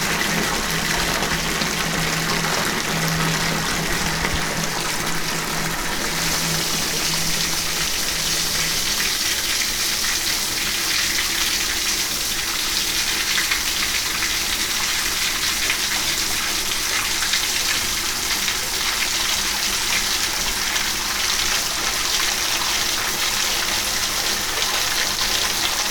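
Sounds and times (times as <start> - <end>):
water running from a tap into a bathtub: 0.0 - 25.8
low hum: 2.0 - 9.4.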